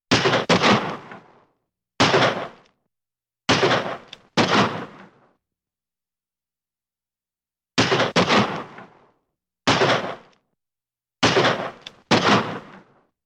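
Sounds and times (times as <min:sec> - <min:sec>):
pistol shots: 0:00.1 - 0:01.1, 0:02.0 - 0:02.6, 0:03.5 - 0:05.1, 0:07.8 - 0:09.0, 0:09.7 - 0:10.3, 0:11.2 - 0:12.9.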